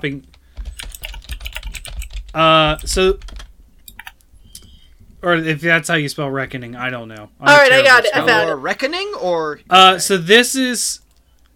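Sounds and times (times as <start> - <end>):
speech: 0.0 - 0.4, 2.3 - 3.4, 5.2 - 11.0
typing on a computer keyboard: 0.6 - 4.2.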